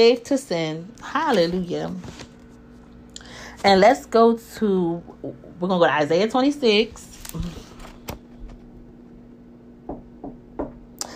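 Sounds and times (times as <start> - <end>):
speech: 0.0 - 2.2, 3.6 - 7.6
low steady hum: 0.0 - 11.1
sharp knocks on a door: 9.8 - 10.9.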